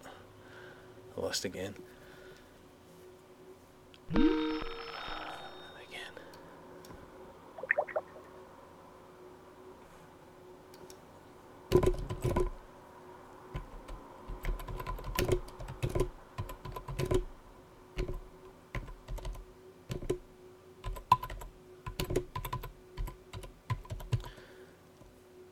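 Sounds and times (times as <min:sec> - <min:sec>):
speech: 0:01.2 - 0:02.0, 0:04.1 - 0:04.5
short chirps: 0:04.1 - 0:05.9
telephone ringing with a bright electronic tone: 0:04.1 - 0:05.9
computer keyboard typing: 0:11.7 - 0:12.5, 0:13.6 - 0:17.3, 0:18.0 - 0:20.2, 0:20.8 - 0:24.4.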